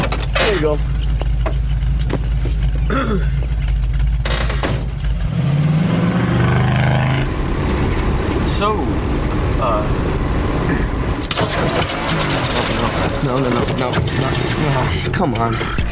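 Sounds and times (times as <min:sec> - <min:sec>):
rattling: 0:00.0 - 0:05.6, 0:11.2 - 0:15.9
car engine idling and revving: 0:00.0 - 0:15.9
speech: 0:00.6 - 0:00.9, 0:02.9 - 0:03.4, 0:08.6 - 0:10.2, 0:11.6 - 0:15.9.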